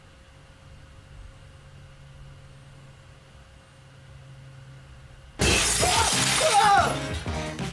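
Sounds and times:
glass pane shattering: 5.4s - 7.6s.

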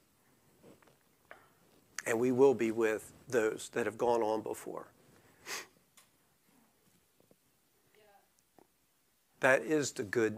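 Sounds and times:
speech: 2.1s - 5.0s, 9.4s - 10.3s
person sniffling or blowing nose: 5.4s - 5.8s.

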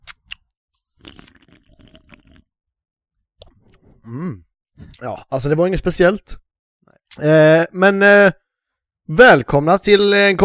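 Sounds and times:
wet chewing and lip smacking during a taste test of a blood-orange drink: 0.0s - 2.4s
speech: 4.1s - 6.4s, 7.2s - 8.4s, 9.1s - 10.4s.

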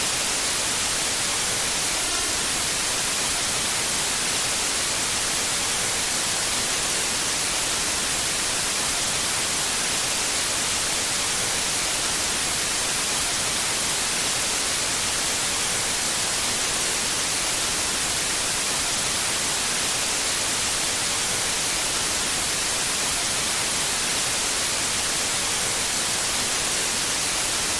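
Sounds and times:
TV static hissing: 0.0s - 27.7s.

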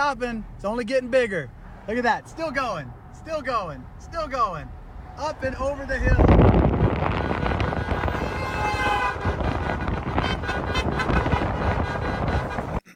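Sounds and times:
speech: 0.0s - 7.4s
loud dense rumble of traffic: 0.0s - 12.9s
vehicle horns honking from passing convoy: 6.0s - 12.8s.

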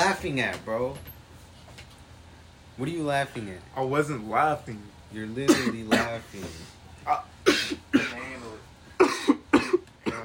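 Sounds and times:
speech: 0.2s - 1.1s, 2.8s - 8.3s
short stifled coughs: 5.5s - 10.2s.

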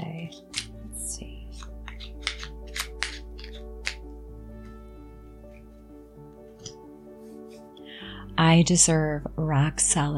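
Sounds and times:
deck of cards being shuffled: 0.0s - 0.8s, 1.5s - 4.1s
speech: 8.4s - 10.1s.

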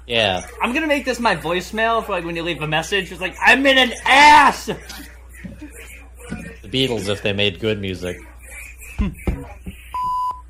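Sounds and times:
speech: 0.1s - 5.6s, 6.7s - 8.3s, 9.0s - 9.3s
laughter: 3.1s - 10.0s
censor bleep over a swear word: 10.0s - 10.4s.

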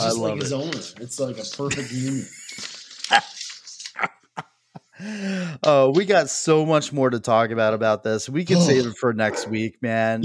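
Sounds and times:
speech: 0.0s - 3.3s, 5.0s - 10.2s
male dog barking: 9.3s - 9.6s.

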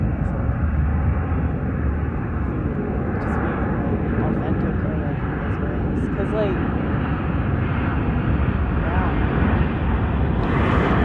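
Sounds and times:
airplane flying close overhead with engine roar: 0.0s - 11.0s.

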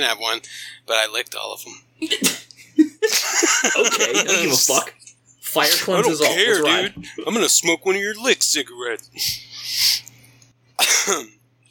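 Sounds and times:
speech: 0.0s - 2.4s, 3.1s - 9.9s, 11.1s - 11.4s
faint steady hum: 0.0s - 11.6s
laughter: 2.1s - 4.8s
person coughing: 10.8s - 11.3s.

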